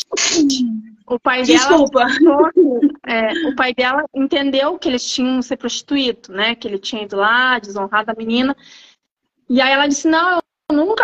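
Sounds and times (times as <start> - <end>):
single loud sneeze: 0.0 - 0.5
speech: 0.2 - 8.9, 9.5 - 11.0.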